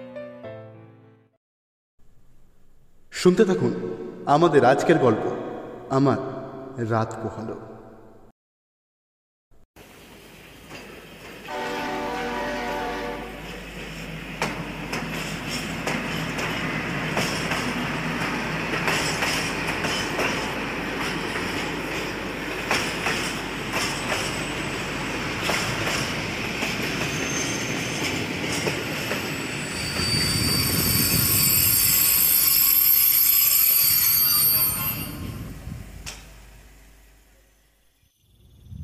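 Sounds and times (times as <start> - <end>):
speech: 3.2 - 7.7
train rolling into a station: 9.8 - 37.7
train horn-like tone: 11.4 - 13.6.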